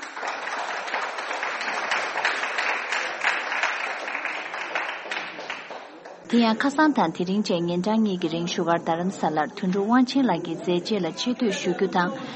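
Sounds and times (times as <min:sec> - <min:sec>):
audience applause at a film award announcement: 0:00.0 - 0:06.9
speech: 0:06.3 - 0:12.3.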